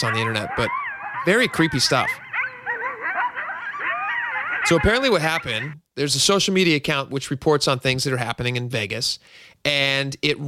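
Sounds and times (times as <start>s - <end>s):
speech: 0.0s - 2.2s, 4.6s - 10.4s
pack of coyotes howling and yipping at night: 0.0s - 5.8s.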